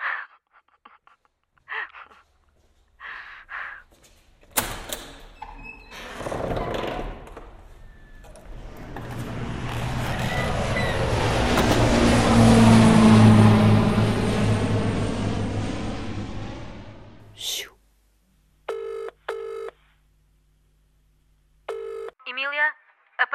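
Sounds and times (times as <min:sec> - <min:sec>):
airplane engine roar of a departing plane: 0:07.2 - 0:17.4
person speaking: 0:17.3 - 0:17.8
telephone ringing in short electronic bursts: 0:18.7 - 0:19.8, 0:21.7 - 0:22.2.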